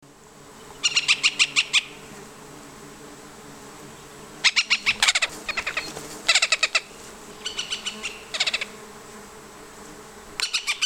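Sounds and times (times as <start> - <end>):
female and male birds worrying near nest: 0.6 - 2.1, 4.0 - 8.8, 10.4 - 10.8.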